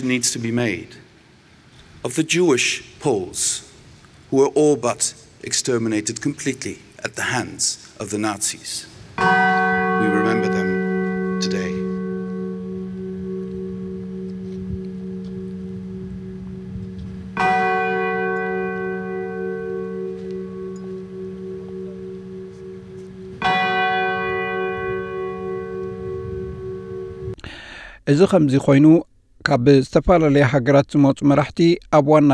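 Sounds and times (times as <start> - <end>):
speech: 0.0 - 1.1, 2.0 - 3.7, 4.3 - 10.6, 28.1 - 32.3
steady lingering hum: 9.0 - 27.4
memorial bell struck at WWII commemoration ceremony in Warsaw Poland: 9.2 - 27.4.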